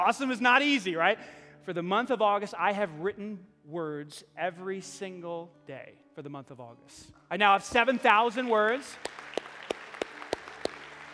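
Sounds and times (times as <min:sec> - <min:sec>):
speech: 0:00.0 - 0:09.3
audience clapping: 0:07.7 - 0:11.1.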